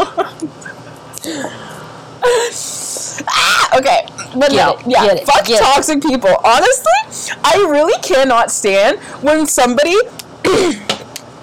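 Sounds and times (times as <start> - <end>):
person imitating a dog with yips and whimpers: 3.2 - 3.8
speech: 3.8 - 10.8.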